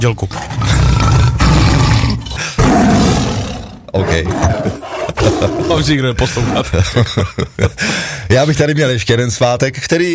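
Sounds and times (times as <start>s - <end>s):
speech: 0.0s - 0.8s, 3.9s - 10.1s
tiger roaring: 0.3s - 6.9s
laughter: 4.0s - 8.1s.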